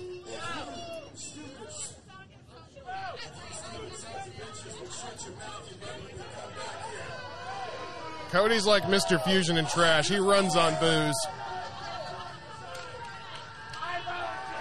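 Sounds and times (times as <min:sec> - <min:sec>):
large crowd booing at a wrestling event: 0:06.4 - 0:14.6
speech: 0:08.3 - 0:11.4.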